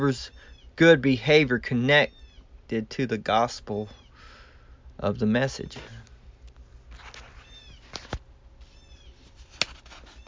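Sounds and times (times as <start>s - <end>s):
bird screeches outdoors: 0.0s - 0.8s, 2.0s - 2.5s, 3.8s - 4.5s, 7.2s - 7.9s, 8.6s - 9.4s, 10.0s - 10.2s
speech: 0.0s - 4.0s, 5.0s - 6.0s.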